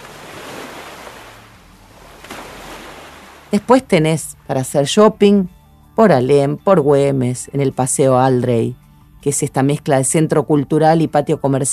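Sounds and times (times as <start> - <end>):
ocean waves breaking against breakwaters along a coastal promenade: 0.0 - 3.6
speech: 3.5 - 11.7.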